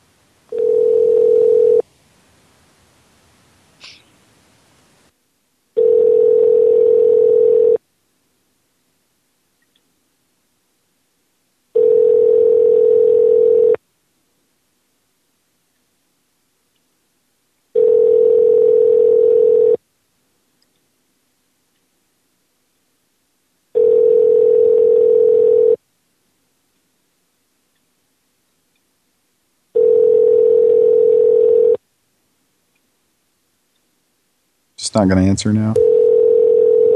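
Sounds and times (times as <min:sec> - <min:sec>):
telephone tones during a call: 0:00.5 - 0:01.8, 0:05.8 - 0:07.8, 0:11.8 - 0:13.8, 0:17.8 - 0:19.8, 0:23.8 - 0:25.8, 0:29.8 - 0:31.8, 0:35.8 - 0:36.9
speech: 0:34.9 - 0:36.0.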